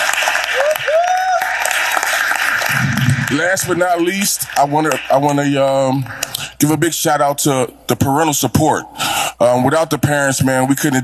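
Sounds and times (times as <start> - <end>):
crowd applauding a national-championship team: 0.0 - 5.8
whistles or cheers: 0.4 - 2.0
speech: 3.3 - 11.0.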